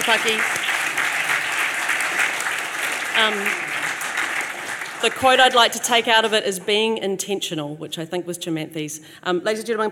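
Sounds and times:
crowd applauding for a panel's panellists: 0:00.0 - 0:06.3
speech: 0:00.1 - 0:00.7, 0:03.2 - 0:03.7, 0:05.0 - 0:09.9.

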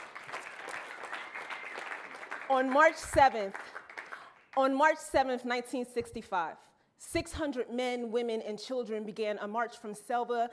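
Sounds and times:
audience round of applause: 0:00.0 - 0:04.6
speech: 0:02.5 - 0:03.8, 0:04.6 - 0:10.5.

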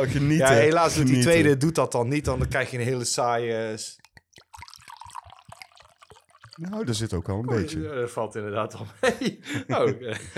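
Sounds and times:
speech: 0:00.0 - 0:04.0, 0:06.6 - 0:10.3
drips: 0:03.9 - 0:07.5
fizzy drink pouring into a glass: 0:04.0 - 0:07.6
laughter: 0:08.9 - 0:10.3.

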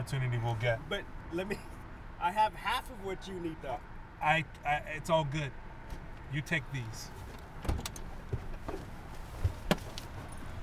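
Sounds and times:
speech: 0:00.0 - 0:07.3
police cruiser door and seat clunks and clicks: 0:07.2 - 0:10.4
faint rustling: 0:08.1 - 0:10.6.

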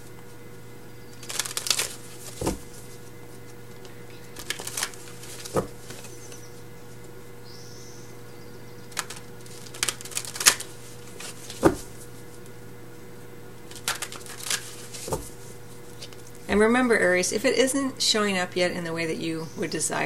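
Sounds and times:
faint steady hum: 0:00.0 - 0:20.0
deck of cards being shuffled: 0:01.1 - 0:07.1, 0:08.9 - 0:12.6, 0:13.6 - 0:16.5
speech: 0:16.6 - 0:20.0.

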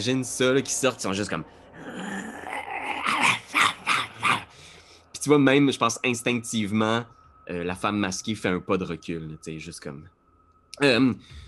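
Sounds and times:
speech: 0:00.0 - 0:01.6, 0:05.2 - 0:10.2, 0:10.8 - 0:11.4
person imitating wolves and half-human wolf creatures growling and snarling: 0:01.7 - 0:04.6.

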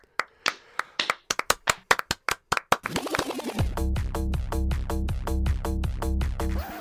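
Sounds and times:
hands slapping in a high five: 0:00.0 - 0:03.5
loud steady burst of music: 0:02.9 - 0:06.7.

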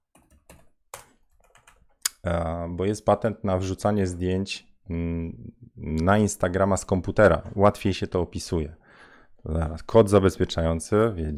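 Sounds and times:
computer keyboard typing: 0:00.0 - 0:02.0
speech: 0:02.2 - 0:08.8, 0:09.4 - 0:11.3.

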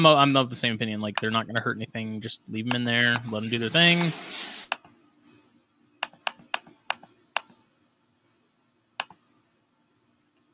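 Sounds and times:
speech: 0:00.0 - 0:04.6
computer keyboard clicks: 0:06.0 - 0:07.5.

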